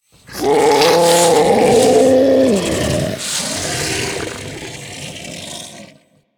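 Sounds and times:
infested enemy idle barks: 0.3 - 4.6.

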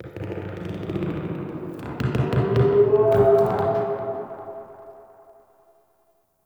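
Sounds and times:
dark creaking ambience: 1.5 - 5.3.

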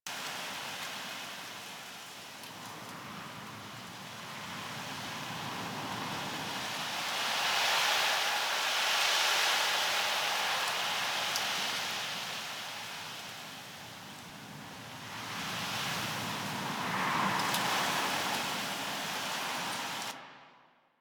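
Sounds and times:
night wind in grass: 0.1 - 20.8.

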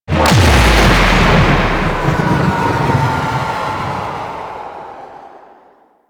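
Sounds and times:
artillery explosion in the sky: 0.1 - 4.8.

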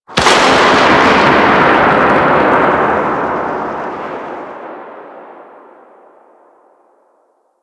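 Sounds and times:
thunder at shipyards: 0.1 - 7.2.

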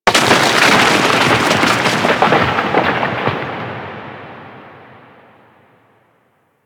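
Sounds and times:
large rock fall: 0.0 - 5.1.

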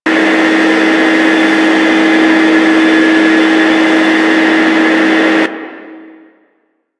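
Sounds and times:
machine hum: 0.0 - 6.7
steady ocean ambience: 0.1 - 6.3.

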